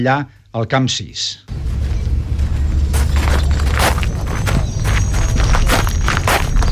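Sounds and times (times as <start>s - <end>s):
speech: 0.0s - 1.5s
footsteps crunching over gravel: 1.5s - 6.7s
low constant rumble: 1.5s - 6.7s.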